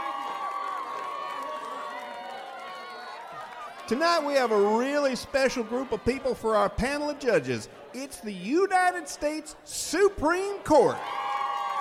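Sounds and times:
whoops and shouts: 0.0s - 3.8s, 10.8s - 11.7s
large crowd cheering and applauding: 0.0s - 11.7s
speech: 3.9s - 11.2s.

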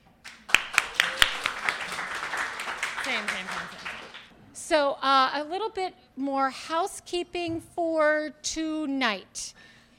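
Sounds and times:
audience applause: 0.2s - 4.3s
voices calling out and cheering: 0.8s - 1.9s
speech: 3.2s - 3.8s, 4.7s - 9.7s.

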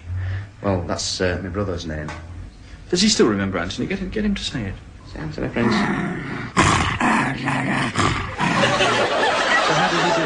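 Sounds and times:
speech: 0.6s - 2.3s, 2.9s - 6.6s, 7.4s - 9.0s
dog growling low in its throat: 5.6s - 9.0s
laughter: 8.3s - 10.2s.

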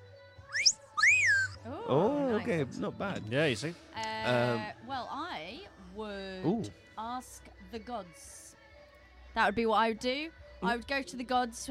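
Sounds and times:
wolf whistle: 0.5s - 1.6s
speech: 1.9s - 5.2s, 6.0s - 8.4s, 9.4s - 11.6s.

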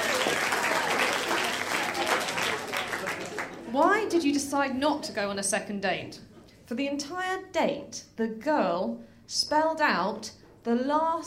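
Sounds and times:
sizable audience applauding: 0.0s - 3.7s
speech: 3.8s - 11.2s.

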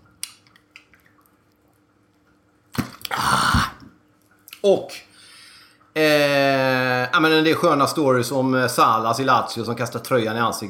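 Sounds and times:
person sipping and swallowing water: 2.7s - 4.0s
speech: 4.6s - 5.0s, 6.0s - 6.3s, 7.2s - 10.6s.

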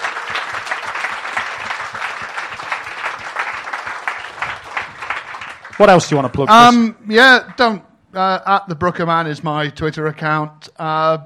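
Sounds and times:
audience applause: 0.0s - 6.7s
speech: 5.8s - 11.2s.

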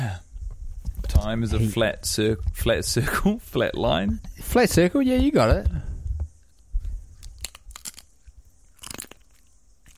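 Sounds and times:
speech: 1.2s - 5.8s
wet crunchy chewing and biting in amateur ASMR: 6.6s - 9.9s.

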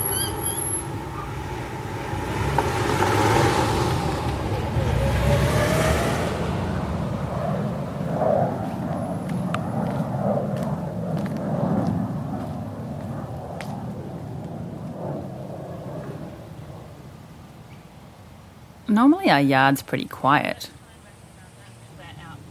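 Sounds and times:
faint bird chirps: 0.0s - 1.3s
passing vehicle: 0.0s - 17.2s
road traffic rumble heard from a backyard: 0.0s - 22.4s
speech: 19.0s - 20.8s.

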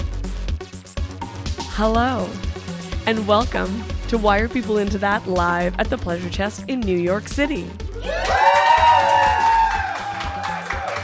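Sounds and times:
speech: 1.8s - 2.5s, 3.1s - 8.3s
high sustained whoop: 8.0s - 11.0s
live crowd cheering: 8.0s - 11.0s.

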